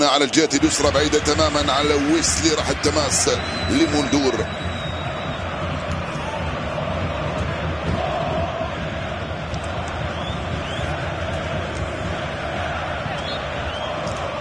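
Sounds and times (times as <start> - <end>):
large stadium crowd of football supporters cheering and chanting: 0.0 - 14.3
speech: 0.1 - 4.7.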